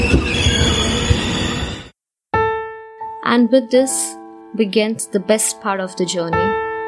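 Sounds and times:
high-pitched screech of jerking train wheels: 0.0 - 1.9
speech: 3.4 - 6.7.

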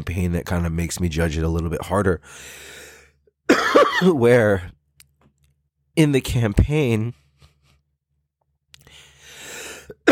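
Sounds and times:
speech: 0.1 - 2.8, 3.5 - 4.8, 6.0 - 7.2
person coughing: 3.5 - 4.2.

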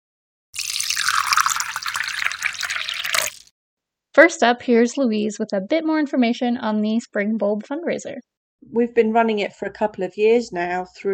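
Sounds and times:
tea pouring into a cup: 0.6 - 3.5
speech: 4.2 - 11.1.

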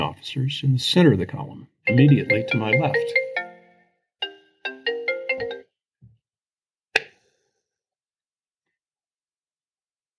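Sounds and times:
person reading aloud: 0.0 - 3.4
speech: 0.1 - 3.2
phone's melodic electronic ringtone: 1.9 - 5.8.

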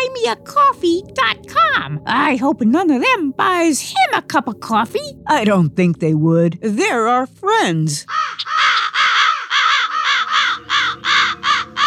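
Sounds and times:
speech: 0.2 - 8.6
crows cawing: 8.1 - 11.8.

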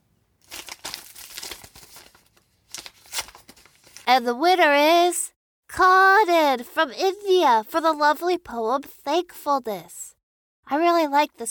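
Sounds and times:
paper envelope being torn open: 0.4 - 4.1
speech: 4.1 - 5.2, 5.8 - 10.0, 10.7 - 11.5.

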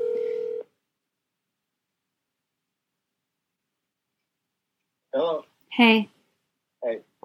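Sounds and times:
steady electronic telephone tone as a phone call is placed: 0.0 - 0.7
speech: 5.2 - 6.1, 6.8 - 7.2.

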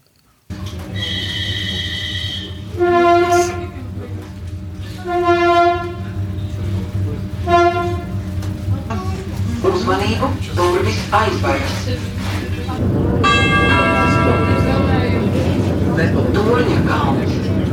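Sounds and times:
train rumbling as it approaches a station: 0.5 - 17.7
loud tonal horn-like train blasts: 0.6 - 8.5, 13.1 - 15.9.

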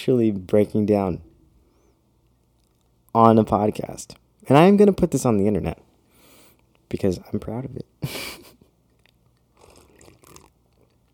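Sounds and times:
speech: 0.0 - 1.3, 3.1 - 5.9, 6.9 - 8.5
person sipping coffee with soft slurping: 9.0 - 11.1.

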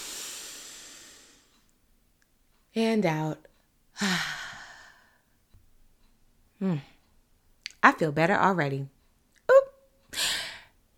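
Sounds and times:
deep breath in: 0.0 - 1.6, 4.0 - 5.4, 10.1 - 10.8
speech: 2.8 - 4.4, 6.6 - 6.9, 7.8 - 8.9.

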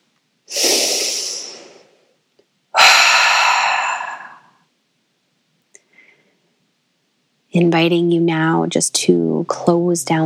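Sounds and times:
breathwork inhale through the nose and exhale through the mouth: 0.5 - 2.1, 2.7 - 4.6, 5.8 - 6.5
speech: 7.6 - 10.2.

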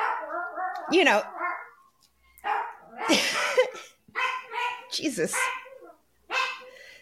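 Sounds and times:
lonely dog barking: 0.0 - 0.5, 2.4 - 6.8
speech: 0.8 - 1.4, 4.9 - 5.6.

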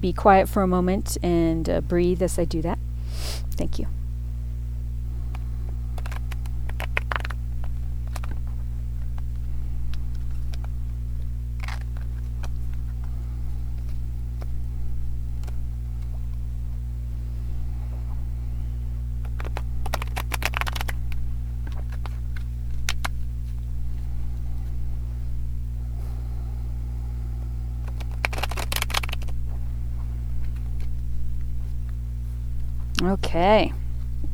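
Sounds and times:
speech: 0.0 - 4.0
steady low hum: 0.0 - 34.3
oracle cards being shuffled: 5.3 - 16.8, 19.2 - 25.4, 27.8 - 32.9.

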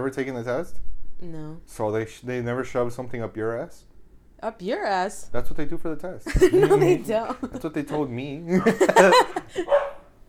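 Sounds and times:
speech: 0.0 - 9.9
laughter: 6.3 - 9.8
household dogs barking: 8.9 - 10.2.

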